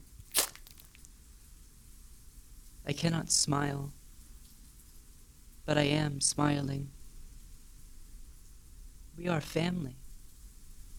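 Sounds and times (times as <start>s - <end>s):
wet squelching splat of a small falling bundle landing: 0.0s - 1.1s
speech: 2.8s - 4.0s, 5.6s - 7.0s, 9.2s - 10.0s.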